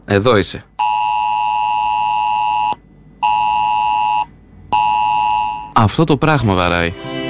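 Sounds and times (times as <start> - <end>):
speech: 0.1 - 0.7, 5.8 - 7.2
mobile phone alarm beeping with a loud harsh electronic tone: 0.8 - 5.8.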